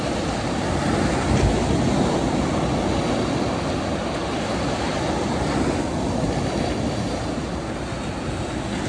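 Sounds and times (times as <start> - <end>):
ocean ambience: 0.0 - 8.8.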